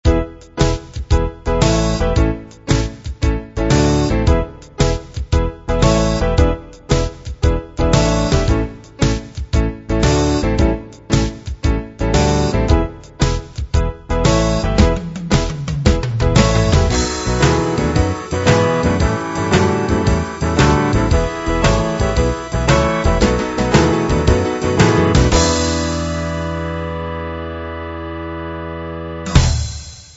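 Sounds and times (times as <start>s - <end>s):
Memphis blues music: 0.0s - 30.1s.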